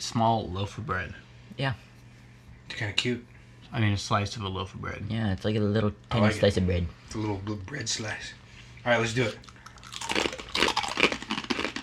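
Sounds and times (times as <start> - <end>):
speech: 0.0 - 1.9, 2.7 - 9.6
chewing a crisp chip: 9.4 - 11.8.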